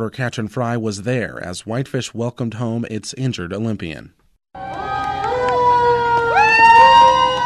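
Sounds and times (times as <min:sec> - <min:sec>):
speech: 0:00.0 - 0:04.2
fire truck siren wailing during a parade: 0:04.6 - 0:07.4.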